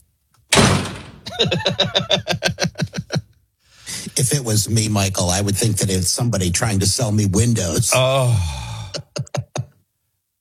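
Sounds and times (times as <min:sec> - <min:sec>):
heavy thump on a door: 0:00.5 - 0:01.4
laughter: 0:01.2 - 0:03.3
speech: 0:01.4 - 0:03.0, 0:04.0 - 0:08.7.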